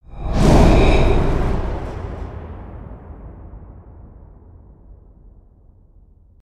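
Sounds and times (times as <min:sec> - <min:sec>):
spaceship ambience: 0:00.0 - 0:02.7.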